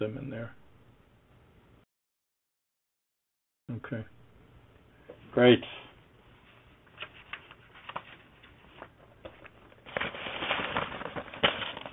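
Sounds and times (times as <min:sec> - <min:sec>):
speech: 0:00.0 - 0:00.6, 0:03.7 - 0:04.2, 0:05.3 - 0:05.8
papers being shuffled on a desk: 0:06.5 - 0:11.9.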